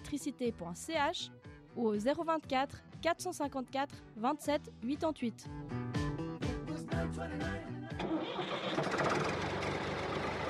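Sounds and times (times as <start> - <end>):
speech: 0.1 - 5.8, 7.0 - 9.5
tractor engine cranking, starting and idling: 7.9 - 10.4.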